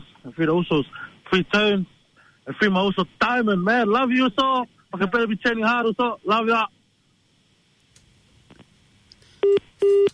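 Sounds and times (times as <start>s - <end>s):
speech: 0.2s - 6.8s
phone line beeps after a call is cut off: 9.4s - 10.1s.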